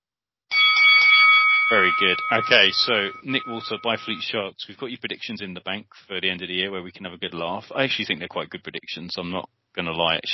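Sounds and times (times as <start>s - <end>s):
bell ringing with a bright sustained metallic tone: 0.5s - 4.3s
speech: 1.7s - 10.3s.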